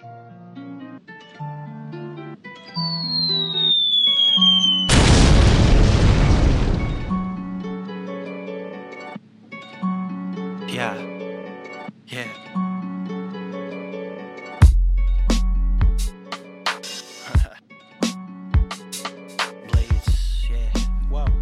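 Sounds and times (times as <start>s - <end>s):
falling whistle: 2.7s - 5.2s
loud deep boom: 4.9s - 7.4s
hip-hop intro of sustained melodic tones: 14.6s - 21.4s.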